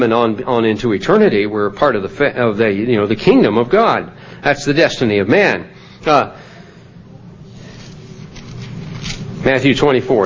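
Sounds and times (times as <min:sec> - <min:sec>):
speech: 0:00.0 - 0:06.4, 0:09.4 - 0:10.2
book pages being turned: 0:07.6 - 0:09.7.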